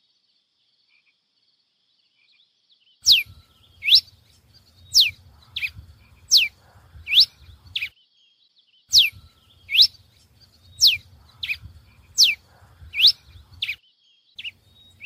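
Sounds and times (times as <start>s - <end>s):
pileated finch Coryphospingus pileatus chirping: 3.0s - 7.9s, 8.9s - 13.8s, 14.4s - 15.0s
low background hum: 3.1s - 7.9s, 8.9s - 13.8s.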